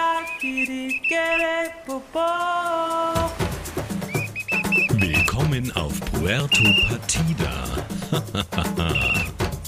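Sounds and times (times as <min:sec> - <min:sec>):
person whistling a clear bright melody: 0:00.1 - 0:01.7, 0:04.0 - 0:05.5, 0:06.2 - 0:07.1, 0:08.9 - 0:09.3
speech: 0:00.3 - 0:03.1, 0:05.3 - 0:09.4
busier louder mix of tones: 0:04.1 - 0:07.9
laughter: 0:07.3 - 0:09.5.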